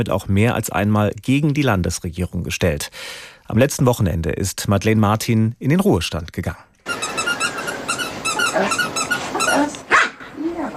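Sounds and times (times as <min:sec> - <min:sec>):
speech: 0:00.0 - 0:06.7
squeaky ball squeaking: 0:06.8 - 0:10.1
female dog barking and growling in a terraced-house garden in Wiesbaden-Bierstadt: 0:06.9 - 0:10.7.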